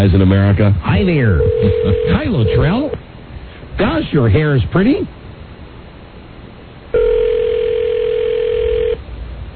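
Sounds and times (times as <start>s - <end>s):
speech: 0.0s - 3.0s, 3.8s - 5.2s
phone ringback tone: 1.4s - 2.9s, 7.0s - 9.0s.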